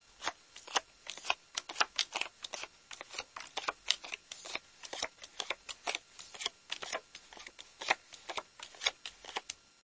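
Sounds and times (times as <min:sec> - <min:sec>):
playing cards being dealt: 0:00.2 - 0:09.6.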